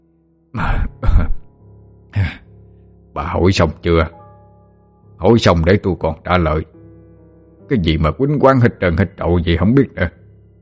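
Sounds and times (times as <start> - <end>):
older man coughing after having fainted: 0.6 - 1.5
speech: 3.2 - 4.2, 5.2 - 6.8, 7.7 - 10.2.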